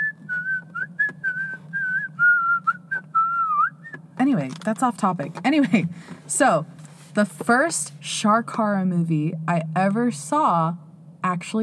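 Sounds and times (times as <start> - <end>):
person whistling a movie theme melody: 0.0 - 4.0
faint low hum: 0.0 - 11.6
speech: 4.2 - 11.6.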